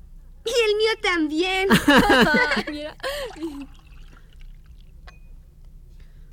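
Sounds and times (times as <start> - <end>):
steady low hum: 0.0 - 6.3
speech: 0.4 - 3.8
laughter: 1.7 - 3.6
water poured into a one-litre container: 3.1 - 5.0.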